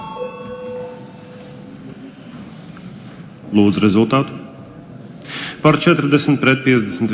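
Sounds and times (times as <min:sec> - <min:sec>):
parliament voting bell ringing with a buzzing electric tone: 0:00.0 - 0:01.8
speech: 0:03.5 - 0:04.4, 0:05.5 - 0:07.1.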